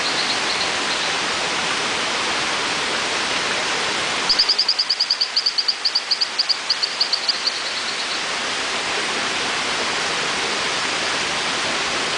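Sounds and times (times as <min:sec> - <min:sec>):
loud rushing water: 0:00.0 - 0:12.1
Hylodes phyllodes frog calling with chirping whistles: 0:04.3 - 0:08.2.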